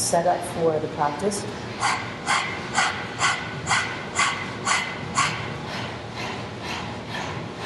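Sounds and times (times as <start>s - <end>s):
speech: 0.1s - 2.2s
person panting rapidly with tongue out imitating a dog in a breathing exercise: 1.6s - 7.6s.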